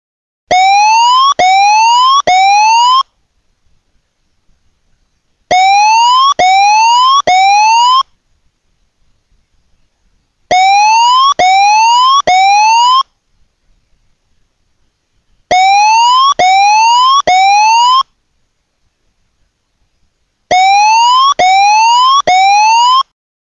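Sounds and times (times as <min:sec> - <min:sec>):
major tsunami warning siren wailing: 0:00.5 - 0:03.0, 0:05.5 - 0:08.0, 0:10.5 - 0:13.0, 0:15.5 - 0:18.0, 0:20.5 - 0:23.1.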